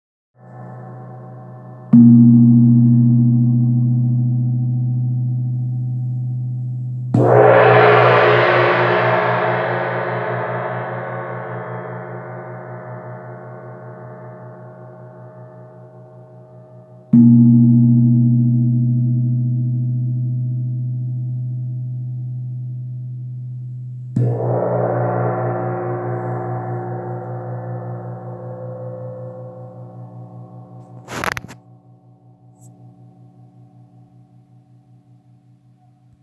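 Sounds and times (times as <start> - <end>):
Thai gong and wind gong percussion: 0.6 - 6.4, 7.1 - 15.9, 17.0 - 21.8, 24.0 - 31.5.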